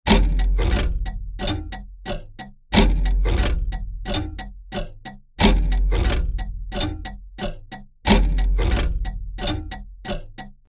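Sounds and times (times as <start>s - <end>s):
peculiar steampunk clock experimental ticking: 0.0s - 10.6s.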